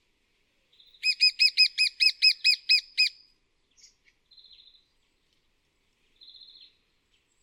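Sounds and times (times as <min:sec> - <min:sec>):
lesser spotted woodpecker Dryobates minor kee calls: 0:01.0 - 0:03.2.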